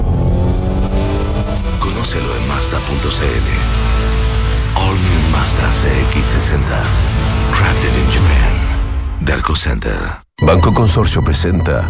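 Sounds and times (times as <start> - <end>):
SUV engine revving: 0.0 - 8.2
speech: 2.1 - 8.6, 9.2 - 11.8.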